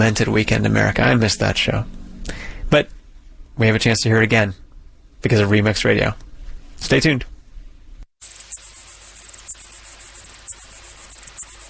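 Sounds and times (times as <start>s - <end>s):
speech: 0.0s - 3.0s, 3.6s - 4.6s, 5.2s - 6.2s, 6.8s - 7.3s
male lesser water boatman stridulating mating call: 8.2s - 11.6s.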